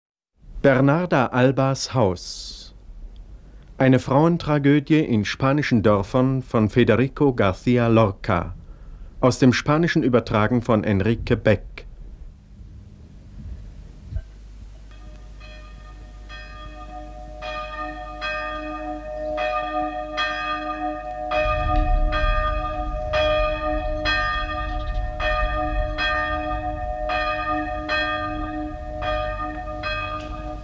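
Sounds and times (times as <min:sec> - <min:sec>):
speech: 0:00.6 - 0:02.6, 0:03.8 - 0:08.6, 0:09.2 - 0:11.8
low rumble: 0:11.0 - 0:18.2, 0:21.0 - 0:30.6
church bells ringing during a funeral: 0:14.9 - 0:30.6.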